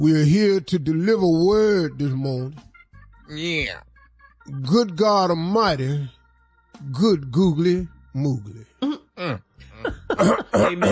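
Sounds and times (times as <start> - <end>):
speech: 0.0 - 2.7, 3.3 - 3.9, 4.5 - 6.2, 6.8 - 10.9
person clearing throat during a church service: 8.8 - 10.9.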